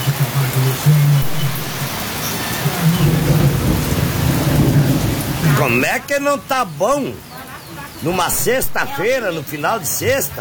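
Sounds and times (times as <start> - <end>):
steady dense rain pouring in São Miguel do Oeste: 0.0 - 10.4
low thunder rumbling in São Miguel do Oeste: 1.2 - 6.5
laughter: 5.4 - 9.9
speech: 5.6 - 7.3, 8.0 - 10.4.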